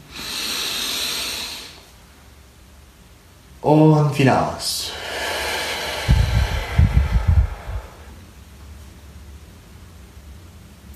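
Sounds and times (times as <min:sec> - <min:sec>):
slow deep inhalation: 0:00.0 - 0:01.9, 0:04.8 - 0:08.2
speech: 0:03.6 - 0:04.8.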